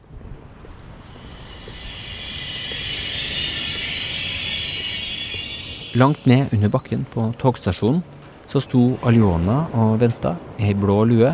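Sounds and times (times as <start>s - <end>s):
freshly washed trams rolling along tracks on a grey day: 0.4s - 10.6s
high-pitched metallic hiss from tram wheels: 0.9s - 7.1s
speech: 6.0s - 11.3s.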